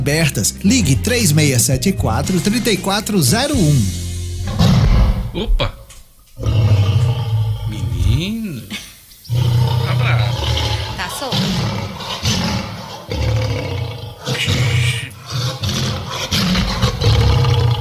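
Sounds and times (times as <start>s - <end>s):
speech: 0.0s - 4.6s, 5.4s - 5.8s, 8.2s - 9.5s, 11.2s - 12.0s
lion roaring in deep rumbling bursts: 4.5s - 5.8s, 6.4s - 8.4s, 9.3s - 17.8s.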